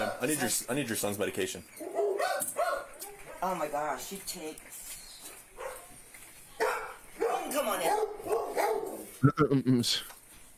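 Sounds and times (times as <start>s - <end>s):
dog barking: 0.0s - 0.3s, 1.8s - 3.6s, 5.6s - 5.9s, 6.6s - 9.1s
speech: 0.2s - 2.6s, 3.4s - 4.8s, 9.2s - 10.2s.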